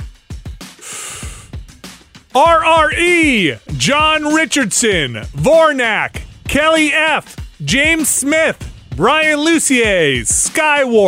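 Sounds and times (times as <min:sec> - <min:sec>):
deep breath inhaled through the mouth: 0:00.7 - 0:01.7
speech: 0:02.4 - 0:11.0.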